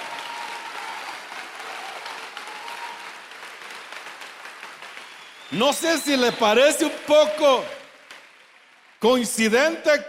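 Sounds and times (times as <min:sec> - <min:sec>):
audience applauding: 0:00.0 - 0:10.0
speech: 0:05.5 - 0:07.8, 0:09.0 - 0:10.0.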